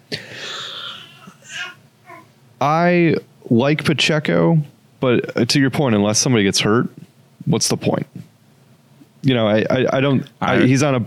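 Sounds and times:
4-month-old baby boy crying as he wakes up: 0.7 - 2.3
speech: 2.6 - 8.2, 9.2 - 11.0.

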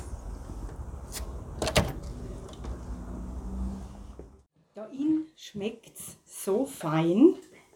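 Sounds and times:
chocolate shop door opening with clatter and thump: 1.6 - 2.2
speech: 4.9 - 7.4.

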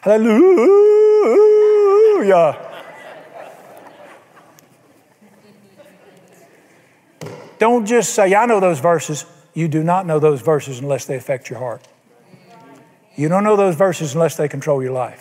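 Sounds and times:
speech: 0.0 - 1.5, 2.2 - 2.7, 7.6 - 11.9, 13.2 - 15.2
person imitating a coyote with a loud wavering howl: 0.0 - 2.6
laughter: 0.7 - 5.0.

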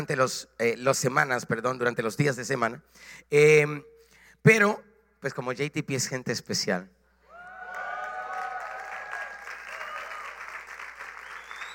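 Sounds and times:
speech: 0.0 - 7.0
crowd whooping: 7.2 - 11.7
audience applauding: 7.4 - 11.7.

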